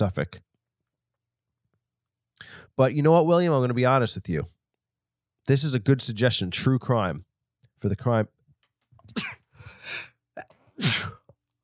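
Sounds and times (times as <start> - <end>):
speech: 0.0 - 0.5, 2.4 - 4.6, 5.5 - 8.4, 9.9 - 11.1
person sneezing: 9.0 - 10.1, 10.8 - 11.2
breathy intake: 9.1 - 10.1.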